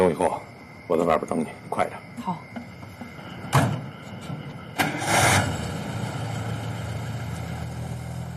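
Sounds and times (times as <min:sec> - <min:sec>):
speech: 0:00.0 - 0:02.6
low car engine rumble as the car moves off: 0:02.6 - 0:08.3
car engine starting: 0:04.6 - 0:08.3.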